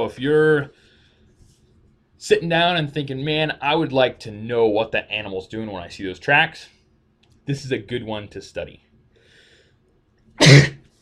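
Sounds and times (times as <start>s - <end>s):
speech: 0.0s - 0.9s, 2.2s - 6.8s, 7.5s - 8.8s
loud explosive sneeze: 10.4s - 10.8s.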